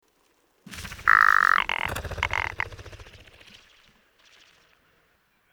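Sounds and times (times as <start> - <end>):
rock ptarmigan calling: 0.7 - 3.5.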